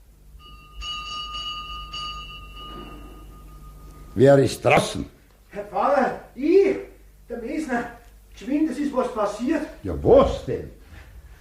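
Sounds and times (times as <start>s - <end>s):
rectory doorbell pulled urgently and ringing: 0.4s - 4.2s
speech: 4.2s - 6.5s, 7.6s - 10.8s.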